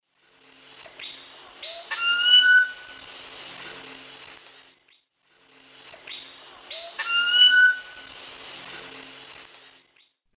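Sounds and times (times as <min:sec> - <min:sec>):
Cacicus sclateri calls playback: 0:01.0 - 0:03.1, 0:06.1 - 0:08.3.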